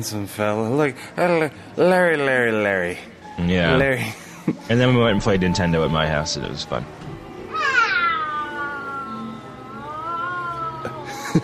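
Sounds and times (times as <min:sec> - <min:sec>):
speech: 0:00.0 - 0:07.0
cat meowing: 0:07.5 - 0:11.0.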